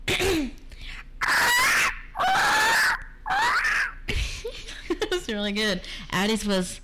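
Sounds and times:
person imitating parrot squawks: 1.2s - 4.1s
speech: 5.3s - 6.8s.

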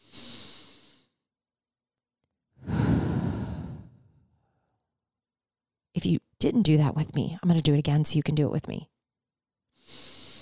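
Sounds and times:
person taking a deep breath and exhaling: 0.0s - 1.2s, 2.6s - 4.6s, 9.8s - 10.4s
speech: 6.1s - 8.9s.

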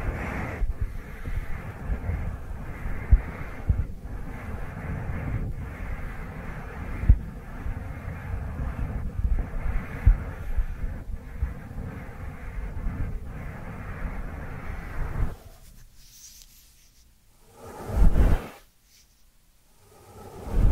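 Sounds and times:
short soft swishes: 0.0s - 20.7s
dry hands rubbing together: 14.2s - 17.2s, 17.9s - 19.4s.

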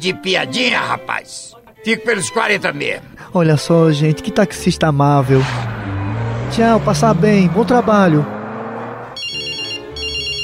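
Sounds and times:
speech: 0.0s - 5.8s, 6.5s - 8.4s
telephone ringing with a bright trilling electronic bell: 9.2s - 10.4s.

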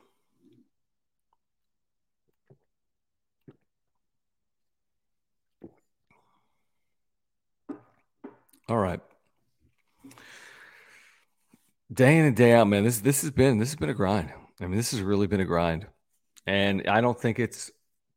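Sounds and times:
swallowing clicks: 2.2s - 2.8s, 3.4s - 4.0s, 5.4s - 6.2s
person sipping water: 2.2s - 4.1s, 5.4s - 6.9s, 7.7s - 10.4s
gulps: 3.4s - 4.0s, 5.4s - 6.4s
hushed breathing: 10.0s - 11.6s
speech: 12.0s - 17.8s.

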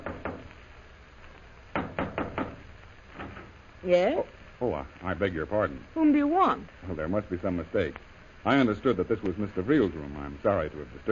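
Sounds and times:
knocking on a hotel room door: 0.0s - 0.5s, 1.8s - 3.4s
speech: 3.8s - 11.1s.

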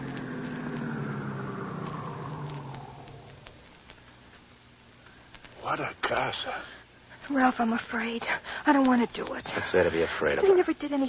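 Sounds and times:
car engine rumbling as the car pulls up and stops: 0.0s - 4.0s
small clicks: 0.0s - 6.3s
speech: 5.7s - 11.0s.

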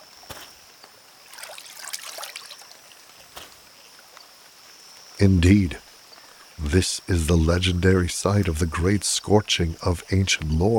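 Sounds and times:
babbling brook feeding a pond trickling: 0.0s - 4.2s
sharper water drips: 0.0s - 5.1s
speech: 5.2s - 5.8s, 6.6s - 10.7s.

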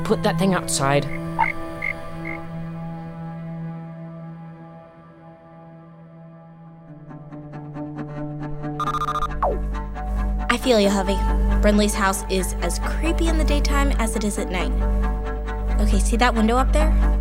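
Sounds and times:
speech: 0.1s - 1.6s, 10.6s - 15.0s, 15.8s - 17.1s
frog croaking: 1.1s - 2.5s, 8.8s - 9.6s.

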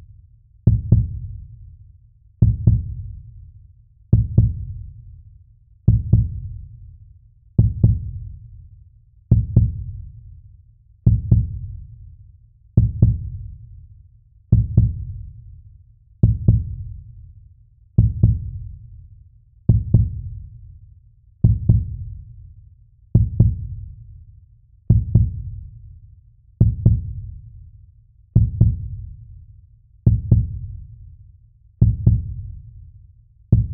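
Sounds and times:
human heartbeat: 0.7s - 1.4s, 2.4s - 3.2s, 4.1s - 4.8s, 5.9s - 6.6s, 7.6s - 8.3s, 9.3s - 10.0s, 11.1s - 11.8s, 12.8s - 13.5s, 14.5s - 15.3s, 16.2s - 17.0s, 18.0s - 18.7s, 19.7s - 20.5s, 21.4s - 22.2s, 23.2s - 23.9s, 24.9s - 25.7s, 26.6s - 27.3s, 28.4s - 29.2s, 30.1s - 30.8s, 31.8s - 32.6s, 33.5s - 33.7s.

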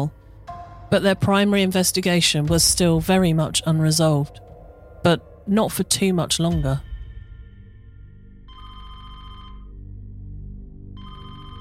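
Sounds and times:
low steady rumble: 0.0s - 7.8s
speech: 0.9s - 4.4s, 5.0s - 6.9s
telephone ringing in electronic trilling bursts: 8.5s - 9.8s, 11.0s - 11.5s.

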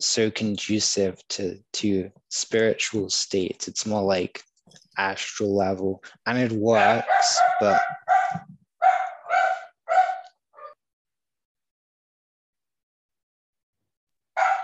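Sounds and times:
speech: 0.1s - 8.6s
dog barking: 6.7s - 10.8s, 14.4s - 14.6s.

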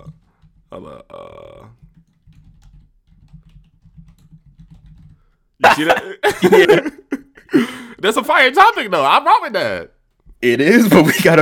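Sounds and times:
typing on a computer keyboard: 0.0s - 0.7s, 1.6s - 5.4s
person burping: 0.7s - 1.8s, 5.6s - 7.1s
speech: 0.7s - 1.8s, 5.6s - 7.0s, 8.0s - 11.3s
laughter: 5.6s - 8.0s.

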